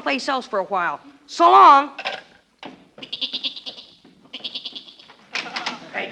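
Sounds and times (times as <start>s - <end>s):
speech: 0.1s - 2.1s
goat bleating in a cellar: 3.0s - 5.8s.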